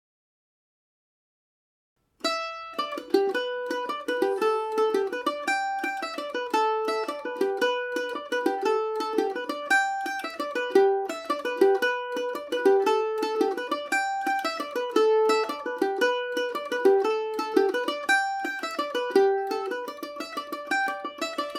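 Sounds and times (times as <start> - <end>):
Irish mandolin playing a jig in G major: 2.2 - 21.5.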